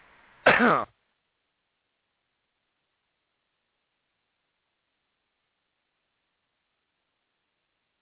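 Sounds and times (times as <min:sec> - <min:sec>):
loud throat clearing: 0:00.5 - 0:00.9.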